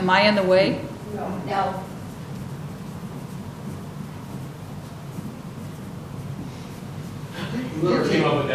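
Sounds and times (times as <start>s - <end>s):
speech: 0.0s - 1.9s, 7.8s - 8.5s
person writing by hand on paper stuck to a wall: 1.8s - 7.8s.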